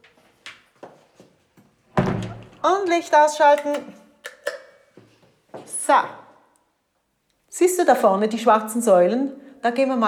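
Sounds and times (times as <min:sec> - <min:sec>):
door being pushed shut: 0:02.0 - 0:02.9
speech: 0:02.6 - 0:04.0, 0:05.9 - 0:06.2, 0:07.6 - 0:10.0.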